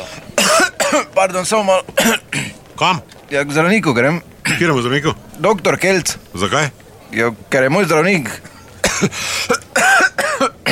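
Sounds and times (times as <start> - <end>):
harsh loud coughs: 0.4 - 1.1, 2.0 - 2.6, 8.3 - 10.7
speech: 0.9 - 10.7.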